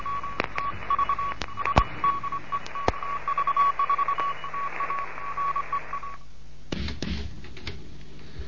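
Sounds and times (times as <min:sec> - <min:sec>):
mid-pitched Morse code tone from a Morse lesson for beginners in Bremen: 0:00.0 - 0:06.2
burst of radio static: 0:00.0 - 0:07.4
faint radio hiss: 0:00.0 - 0:08.4.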